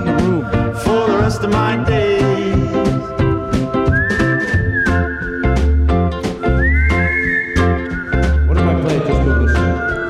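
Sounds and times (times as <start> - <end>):
loud backing music: 0.0 - 10.0
person whistling a melody: 2.6 - 10.0.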